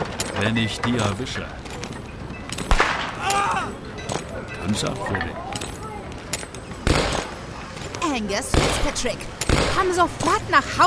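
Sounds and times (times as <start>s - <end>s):
speech: 0.4s - 1.7s, 4.6s - 5.6s, 8.1s - 10.8s
gunfire from a shootout in a rural setting: 2.7s - 3.2s, 6.8s - 7.3s.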